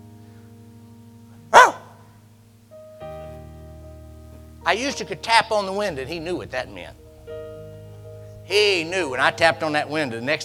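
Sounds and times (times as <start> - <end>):
steady low hum: 0.0 - 9.4
dog barking outside: 1.5 - 2.1
speech: 4.7 - 7.4, 8.5 - 10.4.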